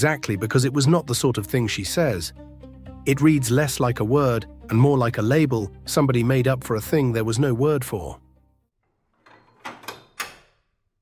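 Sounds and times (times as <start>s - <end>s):
speech: 0.0s - 8.2s
metal door bolt scraping and sliding with a firm clack: 9.0s - 10.7s.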